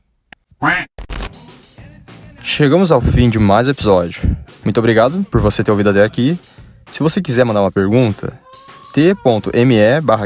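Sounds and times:
loud nasal cartoon duck quack sound effect: 0:00.6 - 0:00.9
speech: 0:02.5 - 0:10.2.

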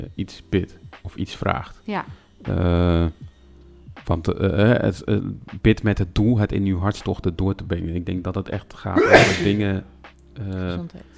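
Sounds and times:
speech: 0:00.0 - 0:03.3, 0:04.1 - 0:11.1
sneeze: 0:09.0 - 0:09.6.

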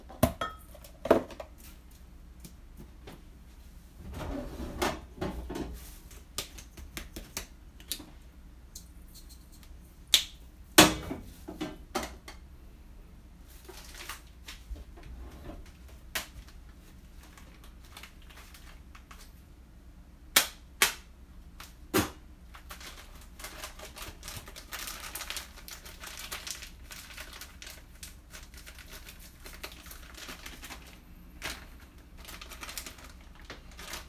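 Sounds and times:
sharp kitchen clatters and knocks: 0:00.0 - 0:01.6, 0:04.0 - 0:05.8, 0:10.8 - 0:12.4
low steady kitchen hum: 0:00.0 - 0:34.0.

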